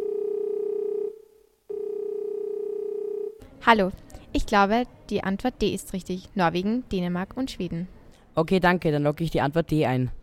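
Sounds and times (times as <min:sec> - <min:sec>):
steady telephone dial tone: 0:00.0 - 0:03.4
speech: 0:03.6 - 0:10.2.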